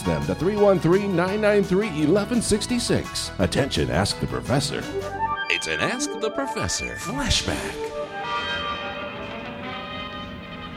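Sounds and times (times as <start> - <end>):
speech: 0.0 - 8.0
bells ringing in a sustained peal: 5.2 - 10.1.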